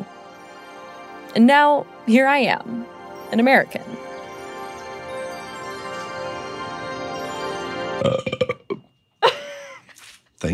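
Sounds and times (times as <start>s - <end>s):
speech: 1.3s - 4.1s, 8.0s - 8.3s
long drawn-out burp: 8.0s - 8.9s.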